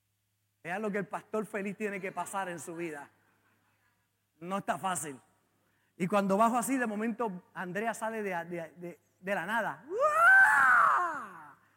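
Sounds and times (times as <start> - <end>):
speech: 0.6 - 3.2, 4.4 - 5.3, 6.0 - 10.1
man reenacting a startled scream: 9.9 - 11.6.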